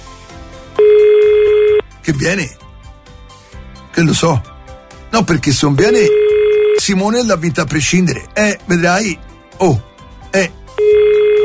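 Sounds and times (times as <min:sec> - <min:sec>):
steady mid-pitched telephone ring tone on a call line: 0:00.8 - 0:01.8, 0:05.8 - 0:07.0, 0:10.8 - 0:11.4
speech: 0:02.1 - 0:02.6, 0:04.0 - 0:04.5, 0:05.2 - 0:11.0.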